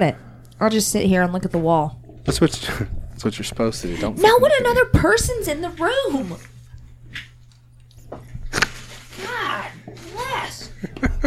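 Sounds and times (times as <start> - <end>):
speech: 0.0 - 6.5
crunching food: 6.8 - 9.2
laughter: 10.8 - 11.2.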